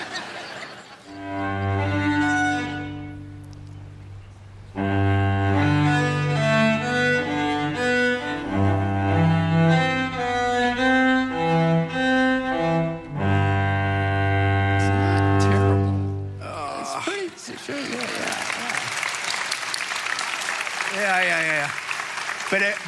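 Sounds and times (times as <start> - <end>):
audience applause: 0.0 - 1.2, 16.9 - 22.8
audience laughter: 0.0 - 1.3, 17.5 - 19.0
beginner cellist playing a cello suite in slow halting low notes: 1.1 - 16.6.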